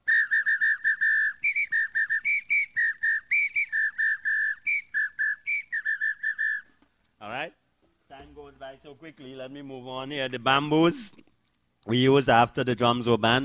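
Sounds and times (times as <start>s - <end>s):
shrill whistle played as a musical instrument: 0.0s - 6.8s
speech: 7.3s - 7.6s, 8.2s - 13.4s.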